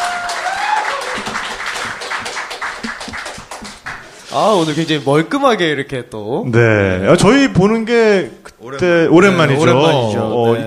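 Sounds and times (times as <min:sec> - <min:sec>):
audience applause after a live song: 0:00.0 - 0:04.1
speech: 0:04.4 - 0:10.6.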